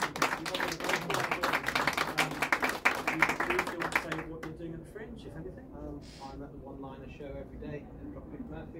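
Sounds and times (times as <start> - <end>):
crowd applauding: 0.0 - 4.6
speech: 7.1 - 8.7.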